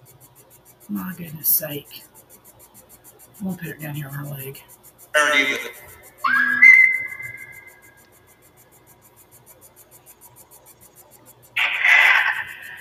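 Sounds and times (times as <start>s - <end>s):
speech: 0.9s - 2.1s, 3.4s - 5.9s
whistled melody: 6.2s - 7.9s.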